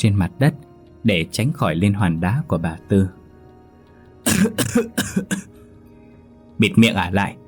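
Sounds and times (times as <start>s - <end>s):
speech: 0.0s - 3.2s, 4.3s - 5.5s, 6.6s - 7.4s
woman in mud-spattered clothes coughing dryly: 4.2s - 5.6s.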